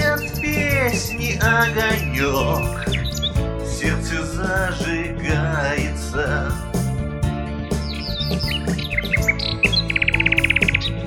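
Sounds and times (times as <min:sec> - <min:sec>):
nightingale song with whistled phrases and rattling trill: 0:00.0 - 0:04.3, 0:07.7 - 0:11.0
steady instrumental music backing: 0:00.0 - 0:11.0
speech: 0:01.0 - 0:02.9.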